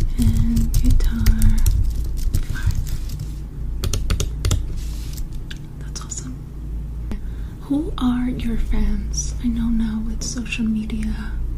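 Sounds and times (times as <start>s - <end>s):
typing on a computer keyboard: 0.0s - 4.6s
steady low hum: 0.0s - 11.5s
speech: 8.6s - 11.4s.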